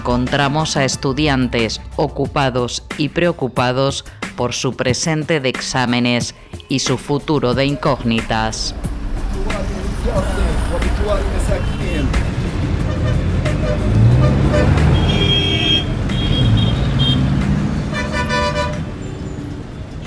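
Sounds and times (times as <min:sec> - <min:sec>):
speech: 0:00.0 - 0:10.4
dense rush-hour street traffic in Gaza rumbling: 0:00.0 - 0:20.0
car horns honking: 0:11.5 - 0:19.2.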